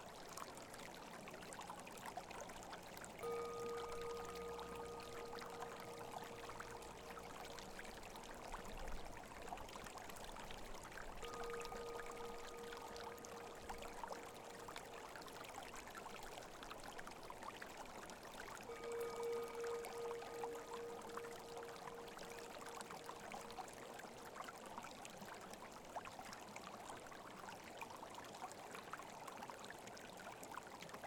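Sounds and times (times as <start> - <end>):
small creek pouring and trickling: 0.0 - 31.0
singing bowl ringing: 3.2 - 8.7, 11.1 - 15.6, 18.6 - 24.2.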